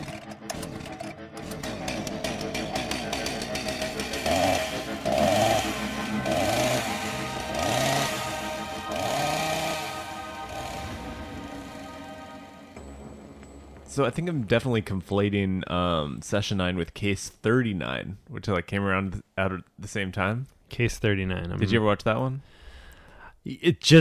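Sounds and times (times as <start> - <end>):
chainsaw engine buzzing and revving: 0.0 - 12.5
speech: 14.0 - 22.6, 23.4 - 23.9.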